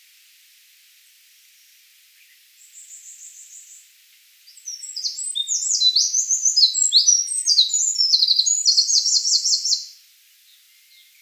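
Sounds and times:
Eurasian wren Troglodytes troglodytes singing: 0:04.5 - 0:09.9.

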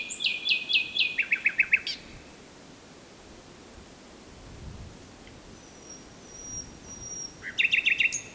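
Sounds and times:
common nightingale Luscinia megarhynchos singing: 0:00.0 - 0:02.2, 0:05.5 - 0:08.3.

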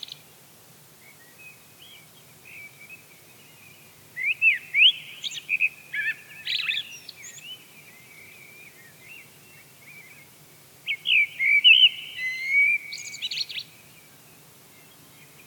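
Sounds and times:
Eurasian blackbird singing fluty phrases: 0:04.2 - 0:09.2, 0:10.9 - 0:13.7.

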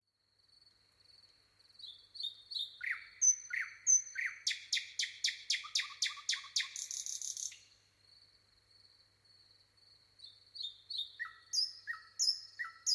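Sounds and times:
common nightingale Luscinia megarhynchos singing whistles and clicking notes: 0:01.8 - 0:07.8, 0:10.2 - 0:12.9.

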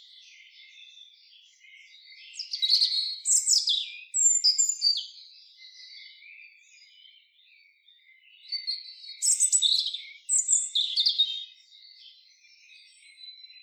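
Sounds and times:
European robin Erithacus rubecula singing: 0:00.0 - 0:13.6.

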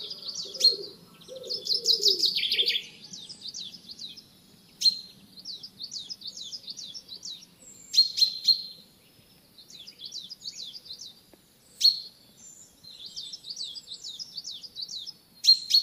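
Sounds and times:
low cooing sound: 0:00.0 - 0:02.9
common chaffinch trilled song: 0:00.0 - 0:15.8.

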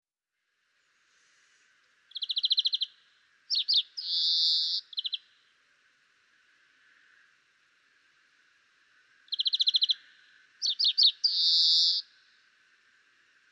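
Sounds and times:
European greenfinch trills and chirps: 0:02.1 - 0:05.4, 0:09.3 - 0:12.2.

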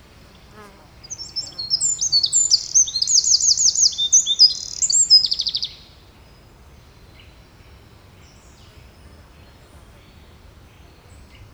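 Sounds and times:
Eurasian wren singing: 0:00.3 - 0:05.9.

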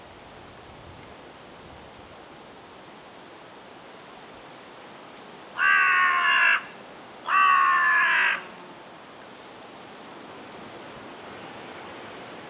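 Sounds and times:
carrion crow Corvus corone cawing: 0:05.6 - 0:08.6.

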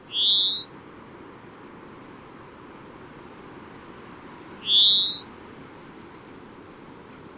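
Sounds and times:
European greenfinch Chloris chloris calling: 0:00.0 - 0:00.7, 0:04.6 - 0:05.3
steady background noise: 0:00.0 - 0:07.3.

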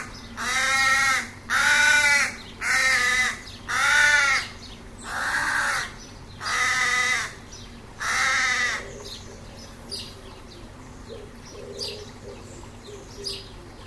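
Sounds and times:
Carrion crow cawing: 0:00.0 - 0:07.4, 0:08.0 - 0:09.0.

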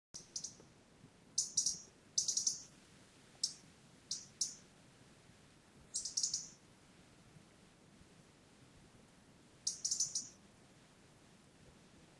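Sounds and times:
European robin Erithacus rubecula high thin calls: 0:00.2 - 0:00.6, 0:01.4 - 0:02.7, 0:03.4 - 0:04.6, 0:05.9 - 0:06.6, 0:09.6 - 0:10.4
low hiss: 0:00.2 - 0:12.1.

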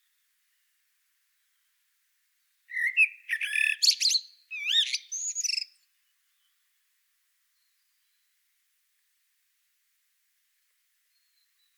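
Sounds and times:
Turdus merula common blackbird singing: 0:02.7 - 0:05.8.

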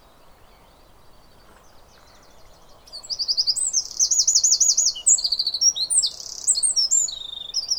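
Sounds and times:
Eurasian wren singing: 0:02.2 - 0:07.7.

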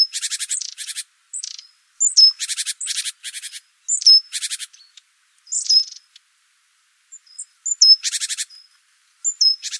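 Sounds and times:
great tit Parus major calling with high thin notes and buzzy churring: 0:00.0 - 0:06.1, 0:07.1 - 0:09.7.

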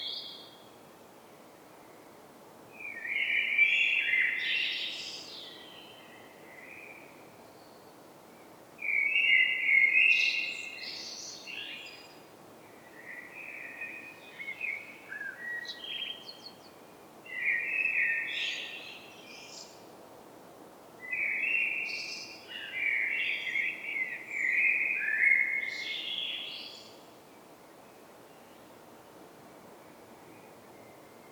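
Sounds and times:
Eurasian blackbird Turdus merula song: 0:02.8 - 0:07.9, 0:08.8 - 0:19.8, 0:21.0 - 0:27.0.

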